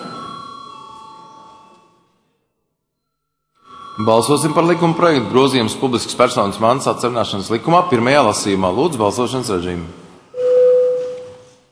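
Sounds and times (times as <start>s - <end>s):
parliament chamber bell chime before a vote: 0.0s - 2.1s, 3.6s - 5.9s, 10.4s - 11.5s
speech: 4.0s - 10.0s.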